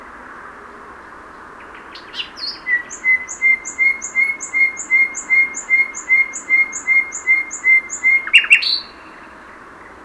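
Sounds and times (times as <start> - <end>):
common nightingale Luscinia megarhynchos singing: 1.6 - 9.6.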